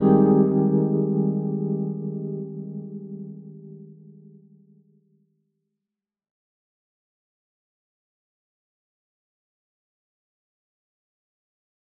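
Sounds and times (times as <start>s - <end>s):
shimmer keys chord in A flat major: 0.0s - 4.8s.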